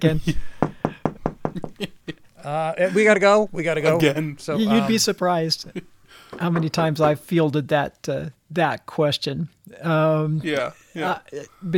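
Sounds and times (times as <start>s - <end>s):
speech: 0.0s - 0.5s, 1.8s - 11.7s
firm knocks on a door: 0.6s - 2.0s.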